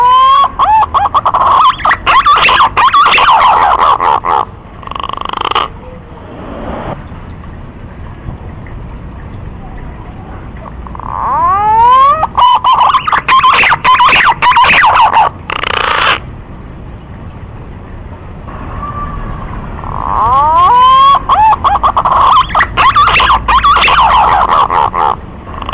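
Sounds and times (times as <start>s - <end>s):
green pigeon lure call of sweeping quavering whistles: 0.4s - 4.2s, 11.3s - 16.2s, 20.2s - 25.0s.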